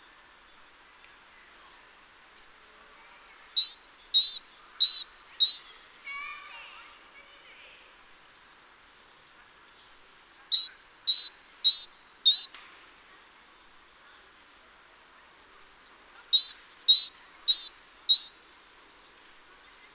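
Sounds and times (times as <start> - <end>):
great tit Parus major calls: 3.3 - 5.7, 10.5 - 12.5, 16.0 - 18.3.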